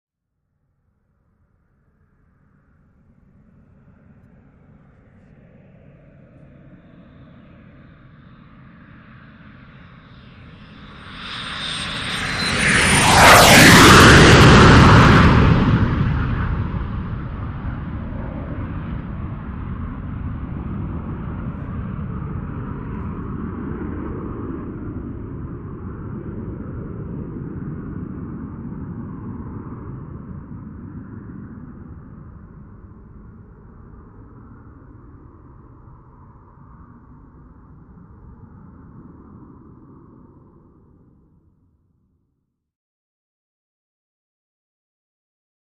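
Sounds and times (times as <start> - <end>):
Lear Jet passing by slowly: 1.8 - 41.6.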